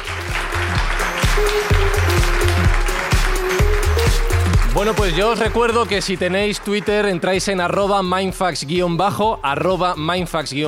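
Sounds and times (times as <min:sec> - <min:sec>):
audience applause of many hands clapping: 0:00.0 - 0:07.6
thumping bass-heavy music beat: 0:00.0 - 0:10.6
speech: 0:04.8 - 0:10.6.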